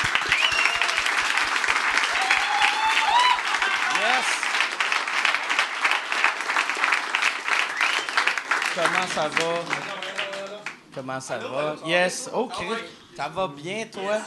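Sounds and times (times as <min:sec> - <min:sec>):
crowd clapping: 0:00.0 - 0:11.0
whistles and whoops: 0:00.2 - 0:01.1, 0:02.1 - 0:03.6, 0:07.7 - 0:08.4
speech: 0:08.8 - 0:09.9, 0:10.9 - 0:14.2.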